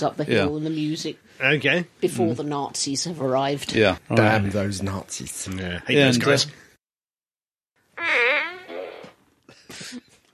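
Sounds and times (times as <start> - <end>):
speech: 0.0 - 6.6
loud buzzy fart noise from a fart gun: 8.0 - 9.3.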